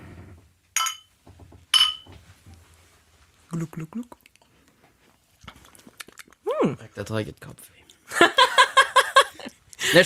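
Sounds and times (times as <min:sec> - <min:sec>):
glasses clinking in a toast: 0:00.8 - 0:01.1, 0:01.7 - 0:02.1
speech: 0:03.5 - 0:04.2, 0:06.6 - 0:08.2
laughter: 0:08.1 - 0:10.0.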